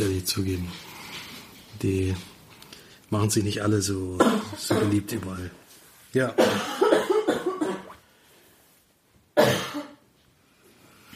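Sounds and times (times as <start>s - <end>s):
speech: 0.0s - 0.9s, 1.7s - 2.3s, 3.1s - 7.0s
person coughing: 4.2s - 5.2s, 6.4s - 8.0s, 9.4s - 10.0s.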